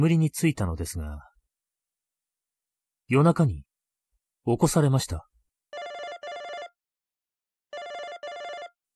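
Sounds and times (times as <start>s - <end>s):
speech: 0.0s - 1.3s, 3.1s - 3.7s, 4.4s - 5.3s
hotel room landline telephone ringing with shrill electronic trills: 5.7s - 6.8s, 7.7s - 8.8s.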